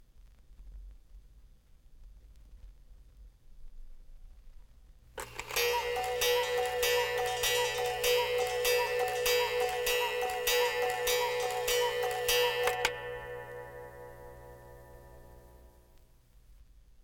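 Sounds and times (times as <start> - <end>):
cuckoo clock striking: 5.2 - 15.7.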